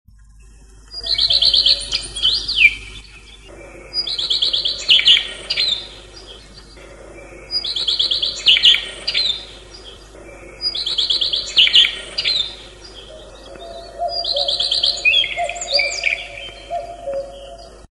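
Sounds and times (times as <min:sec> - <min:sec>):
common redstart: 0:00.2 - 0:17.9.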